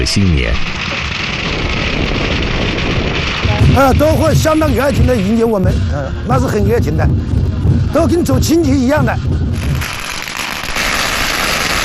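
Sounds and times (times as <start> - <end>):
speech: 0.0 - 0.9, 3.5 - 9.4
firecrackers set off by villagers to welcome a dragon dance troupe: 0.0 - 11.8.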